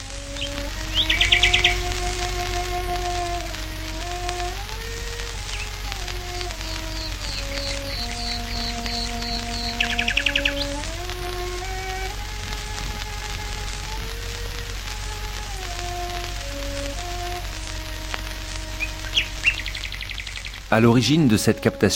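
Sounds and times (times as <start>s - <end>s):
steady low hum of an old radio broadcast: 0.0s - 21.8s
faint crackle of an old radio broadcast: 0.0s - 21.9s
slow sustained cello melody played in a garden: 0.0s - 21.9s
group of nightingales singing in a garden: 0.2s - 13.5s, 18.4s - 21.9s
speech: 20.8s - 21.9s.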